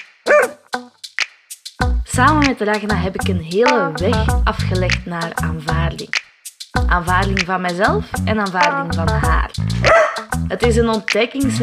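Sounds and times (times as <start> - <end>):
dog barking and yipping: 0.3 - 0.7, 9.9 - 10.3
speech: 2.2 - 6.2, 6.9 - 11.6.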